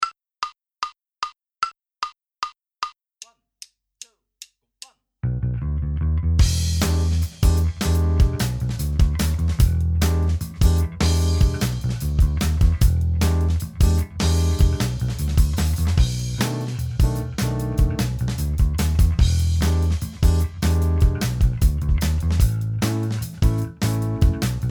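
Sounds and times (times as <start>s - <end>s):
backing track without guitar: 5.2s - 24.6s.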